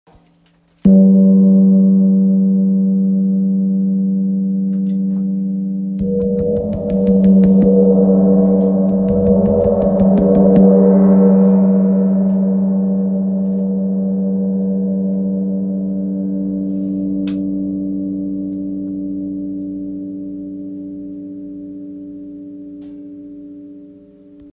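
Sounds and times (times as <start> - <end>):
40cm wind gong in sol: 0.9 - 24.0.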